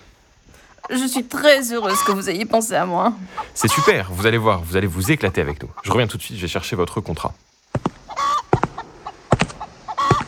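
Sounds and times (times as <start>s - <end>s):
chickens clucking: 0.5s - 10.2s
chicken squawks: 0.6s - 2.4s, 3.3s - 6.0s, 7.8s - 10.2s
speech: 0.9s - 7.5s.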